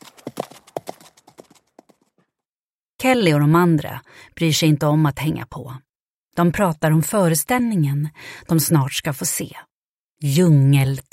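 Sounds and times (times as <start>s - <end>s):
horse galloping off: 0.0s - 2.3s
speech: 3.0s - 11.1s.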